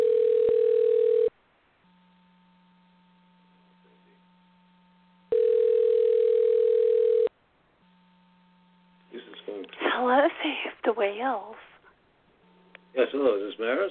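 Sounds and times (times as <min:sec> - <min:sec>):
telephone ringback tone on a call being dialed: 0:00.0 - 0:01.3, 0:05.3 - 0:07.3
faint telephone line hum: 0:01.4 - 0:13.8
speech: 0:11.0 - 0:11.7, 0:13.0 - 0:13.8.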